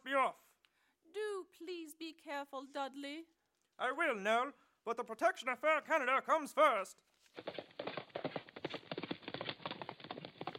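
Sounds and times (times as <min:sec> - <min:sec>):
speech: 0:02.2 - 0:07.8
horse hooves clip-clopping while trotting: 0:07.3 - 0:10.5.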